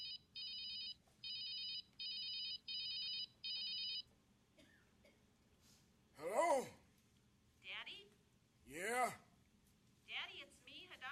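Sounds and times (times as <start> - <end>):
mobile phone ringing with warbling electronic tone: 0.0 - 4.0
low hum: 0.0 - 11.1.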